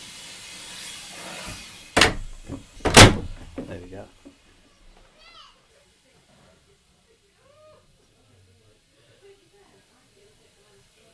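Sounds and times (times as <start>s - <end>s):
heavy door of an old third-class steam train carriage slamming shut: 2.0s - 3.7s
speech: 3.7s - 4.4s.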